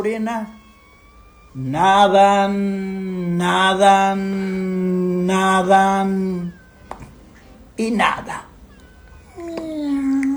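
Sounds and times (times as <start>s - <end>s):
speech: 0.0s - 0.6s, 1.5s - 6.6s, 7.8s - 8.5s
person imitating a cat meow: 9.3s - 10.3s.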